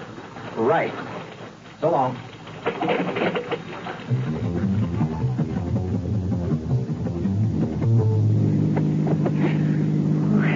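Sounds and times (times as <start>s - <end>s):
speech: 0.6s - 1.2s, 1.8s - 3.4s
stick-shift car engine droning while driving: 3.8s - 10.5s.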